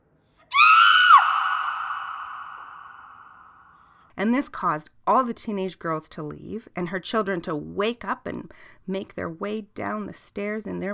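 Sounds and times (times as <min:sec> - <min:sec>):
mother screaming in horror: 0:00.5 - 0:03.4
speech: 0:04.2 - 0:10.9.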